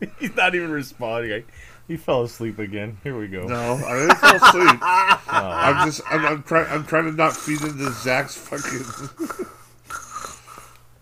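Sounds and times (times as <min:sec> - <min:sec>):
speech: 0:00.4 - 0:09.6
laughter: 0:03.6 - 0:06.9
heavy wheezy breathing into microphone: 0:07.3 - 0:10.8.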